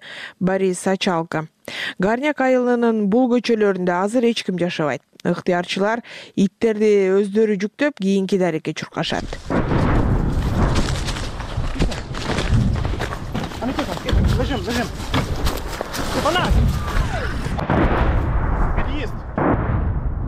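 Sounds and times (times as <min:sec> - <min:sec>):
speech: 0:00.4 - 0:09.6, 0:14.5 - 0:15.2, 0:16.2 - 0:16.8
artillery shelling around a deserted village street: 0:09.4 - 0:13.4, 0:16.2 - 0:20.2
dense loud rumble of artillery shelling: 0:09.5 - 0:15.4, 0:16.4 - 0:20.2.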